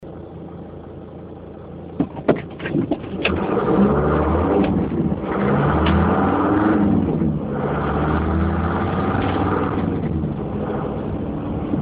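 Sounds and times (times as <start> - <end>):
312D vehicle pulling away with warm engine: 3.0 - 11.8.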